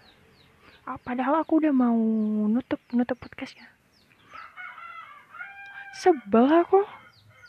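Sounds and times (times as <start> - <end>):
speech: 0.9 - 3.8, 6.0 - 7.0
chickens crowing and clucking near a house: 4.2 - 7.4.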